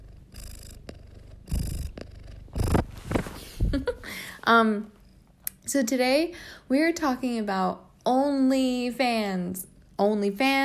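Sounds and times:
domestic cat purring: 0:00.0 - 0:04.0
speech: 0:04.5 - 0:05.0, 0:05.7 - 0:10.6.

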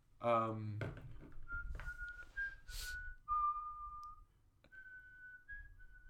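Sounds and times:
person whistling a slow melody of long clear held notes: 0:01.4 - 0:06.0.

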